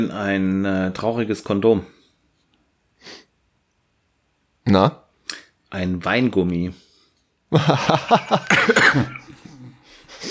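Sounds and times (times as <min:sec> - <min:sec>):
speech: 0:00.0 - 0:02.0, 0:04.7 - 0:05.0, 0:05.7 - 0:06.8, 0:07.5 - 0:09.4
laughter: 0:07.5 - 0:10.2
person coughing harshly: 0:08.4 - 0:09.8.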